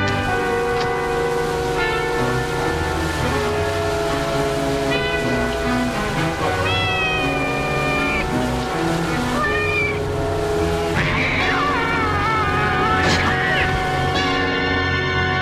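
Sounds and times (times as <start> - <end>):
steady ringing tonal drone: 0.1 - 15.4
cats meowing: 4.9 - 10.2.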